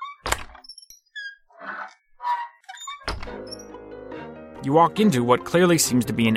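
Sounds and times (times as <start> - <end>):
squeaky creaks of swinging door: 0.0 - 3.9
heavy door thump with a short resonant ring: 0.2 - 0.6, 3.1 - 3.4
door pushed open with a solid thunk: 0.2 - 0.7, 3.1 - 3.6
speech: 4.6 - 6.3.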